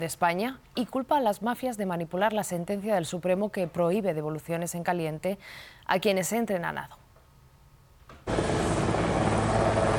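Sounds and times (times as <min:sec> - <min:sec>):
speech: 0:00.0 - 0:07.0
helicopter engine and rotors roaring: 0:08.3 - 0:09.9.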